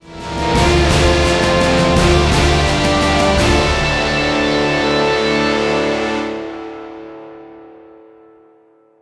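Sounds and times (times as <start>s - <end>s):
round win music: 0.2s - 7.2s.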